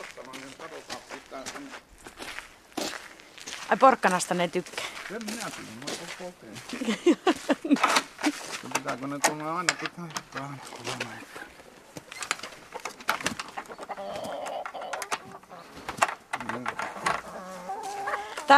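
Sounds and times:
speech: 0:03.7 - 0:08.0, 0:08.8 - 0:11.5
hens clucking on a chicken and donkey farm: 0:06.6 - 0:18.5
laughter: 0:06.7 - 0:08.4
hens squawking: 0:12.5 - 0:16.0, 0:16.7 - 0:18.5.

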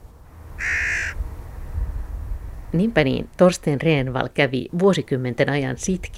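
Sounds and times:
steady low rumble of noise: 0:00.0 - 0:06.1
hooded crow giving a harsh drawn-out caw: 0:00.6 - 0:01.2
speech: 0:02.7 - 0:06.1.

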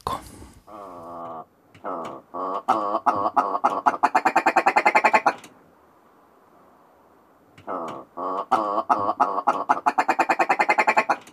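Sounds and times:
willow ptarmigan calling: 0:00.7 - 0:05.4, 0:07.6 - 0:11.2.

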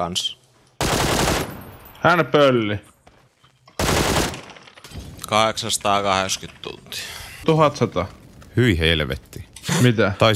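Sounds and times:
speech: 0:00.0 - 0:00.4, 0:02.0 - 0:02.9, 0:05.3 - 0:10.3
pistol fire in an online shooting video game: 0:00.8 - 0:01.7, 0:03.8 - 0:04.7.

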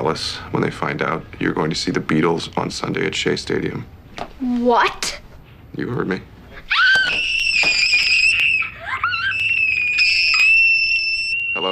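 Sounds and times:
speech: 0:00.0 - 0:07.3, 0:11.6 - 0:11.7
excited fan screaming at a concert: 0:06.7 - 0:11.7.

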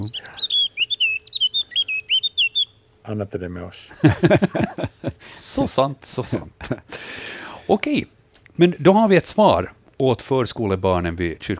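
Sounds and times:
Eurasian blackcap singing fluty notes: 0:00.0 - 0:03.1
speech: 0:03.1 - 0:07.0, 0:07.7 - 0:11.5
laughter: 0:03.9 - 0:07.1.

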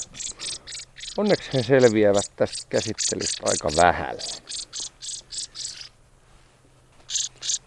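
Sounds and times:
European robin calling while being handled: 0:00.0 - 0:06.0, 0:07.1 - 0:07.6
speech: 0:01.2 - 0:04.6.

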